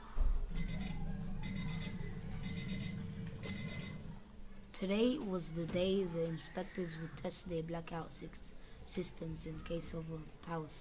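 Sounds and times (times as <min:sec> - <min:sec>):
constant low rumbling hum: 0:00.0 - 0:04.8
alarm clock beeping with high electronic beeps: 0:00.5 - 0:04.2
speech: 0:04.8 - 0:10.7.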